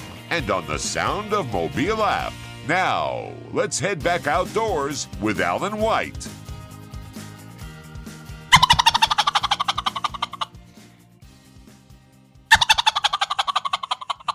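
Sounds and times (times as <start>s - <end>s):
speech: 0.4s - 6.4s
world-champion gobbler imitating a turkey gobble: 8.5s - 10.5s, 12.5s - 14.3s.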